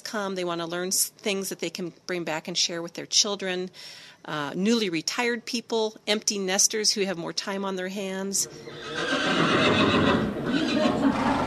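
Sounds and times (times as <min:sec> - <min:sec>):
speech: 0:00.1 - 0:11.4
horse neighing: 0:08.4 - 0:11.4.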